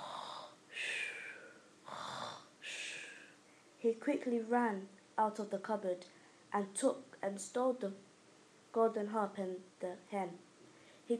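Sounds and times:
voice imitating a giant snoring: 0.0 - 3.2
speech: 3.8 - 8.1, 8.7 - 10.5.

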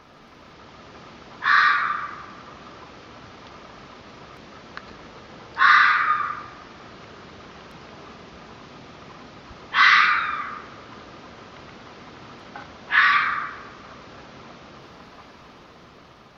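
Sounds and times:
red fox harsh raspy barking screams: 1.4 - 2.4, 5.6 - 6.6, 9.7 - 10.8, 12.9 - 13.8.

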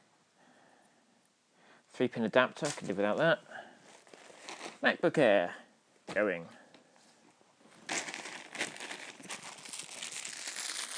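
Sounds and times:
speech: 2.0 - 3.7, 4.8 - 6.6
plastic bag crinkling and rustling: 7.8 - 10.9.

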